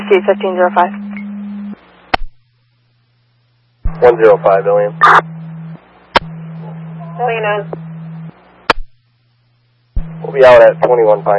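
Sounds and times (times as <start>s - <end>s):
radio paging tones: 0.0s - 2.3s, 3.9s - 8.4s, 10.0s - 11.3s
speech: 0.1s - 1.0s, 4.0s - 5.3s, 7.2s - 7.8s, 10.3s - 11.3s.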